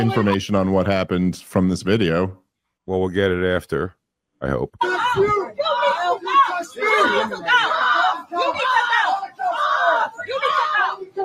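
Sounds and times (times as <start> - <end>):
woman yelling on an airplane: 0.0 - 0.4, 4.8 - 11.2
speech: 0.0 - 5.7.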